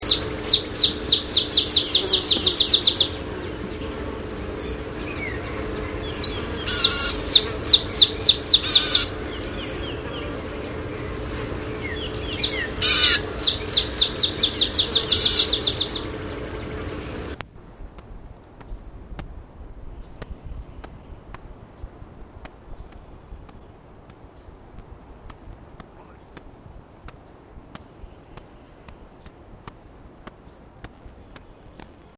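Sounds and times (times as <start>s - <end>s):
olive sparrow calling: 0.0s - 17.4s.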